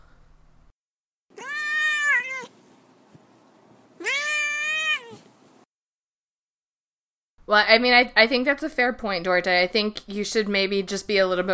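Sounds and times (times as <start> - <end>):
cat meowing: 1.3 - 2.6, 4.0 - 5.3
speech: 7.5 - 11.5.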